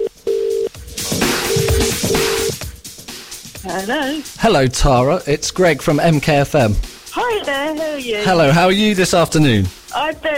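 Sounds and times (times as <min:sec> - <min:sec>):
steady mid-pitched telephone dialling tone: 0:00.0 - 0:02.6
UK-style telephone double ring tone: 0:01.4 - 0:02.6
speech: 0:03.7 - 0:10.3.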